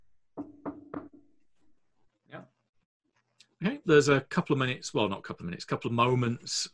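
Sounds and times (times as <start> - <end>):
knocking on the door of a room downstairs: 0.4 - 1.2
speech: 3.6 - 6.7.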